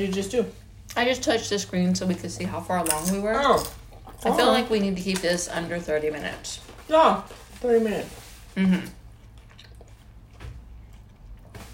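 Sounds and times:
speech: 0.0 - 9.0
chewing and squishy mouth sounds: 2.9 - 5.2, 8.8 - 11.7.

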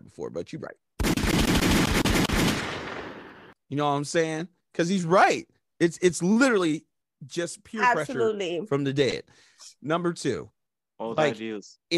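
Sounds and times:
speech: 0.2 - 1.8, 3.7 - 11.9
rapid burst of gunfire sound effect: 1.0 - 3.6.

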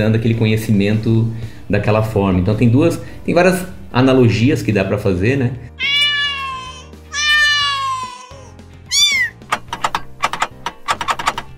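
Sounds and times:
speech: 0.0 - 5.9
cat meowing: 5.8 - 9.4
sharp clicking taps: 9.3 - 11.5.

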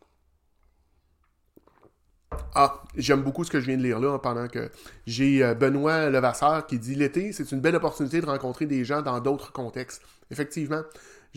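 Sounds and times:
person sipping water with wet mouth and swallowing sounds: 1.5 - 2.1
sudden louder thump: 2.3 - 3.3
speech: 2.6 - 11.3.

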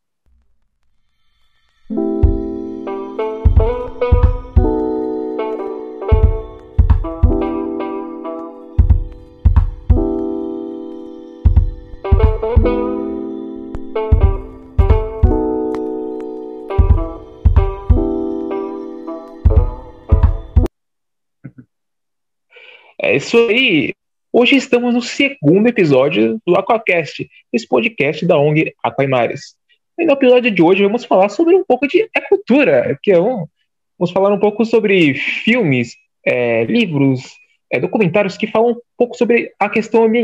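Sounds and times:
short instrumental intro jingle with sustained melodic chords over a punchy beat: 1.8 - 20.7
speech: 23.2 - 40.2.

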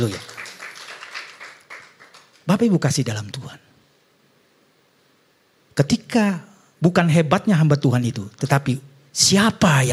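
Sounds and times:
speech: 0.0 - 0.3, 2.5 - 3.6, 5.8 - 9.9
crowd applauding: 0.0 - 2.5.

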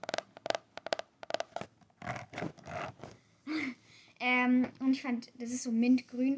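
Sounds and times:
hardcover lined notebook creak: 0.0 - 3.2
hardcover lined notebook rustling: 1.3 - 3.2
speech: 3.6 - 6.3.

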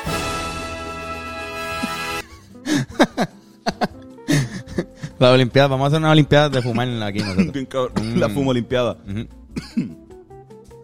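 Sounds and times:
laughter: 2.7 - 4.9
speech: 5.2 - 9.9
throat clearing: 6.5 - 8.3, 9.1 - 10.0
person coughing raspily: 6.5 - 8.4, 9.1 - 10.0.

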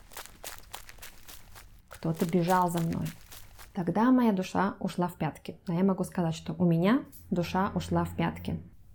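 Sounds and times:
soft scuffing footsteps speeding up: 0.0 - 3.8
speech: 2.0 - 3.2, 3.8 - 8.7.

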